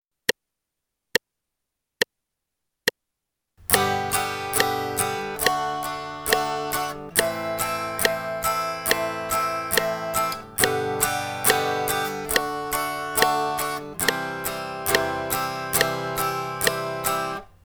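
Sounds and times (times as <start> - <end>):
guitar song with upstrokes and downstrokes: 3.6 - 17.6.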